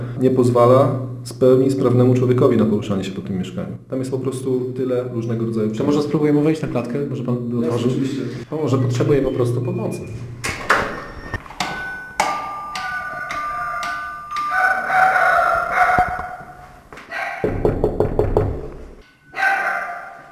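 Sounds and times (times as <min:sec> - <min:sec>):
speech: 0:00.2 - 0:10.4
dog barking and whining inside an apartment: 0:12.8 - 0:17.5, 0:19.3 - 0:20.3
loud knocking on an apartment door: 0:17.4 - 0:18.7.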